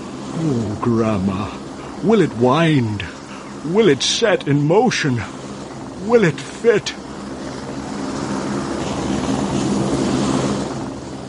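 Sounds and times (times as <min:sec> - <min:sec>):
helicopter engine and rotor overhead: 0:00.0 - 0:11.2
speech: 0:00.4 - 0:05.4, 0:06.0 - 0:07.0.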